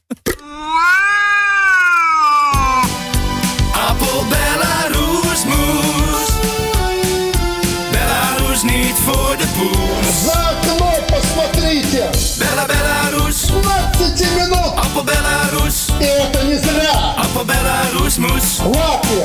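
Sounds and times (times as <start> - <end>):
long wavering cat meow in podcast jingle: 0.6 - 2.9
busy upbeat jingle music with steady pounding beat: 2.6 - 19.2
speech: 17.4 - 19.2.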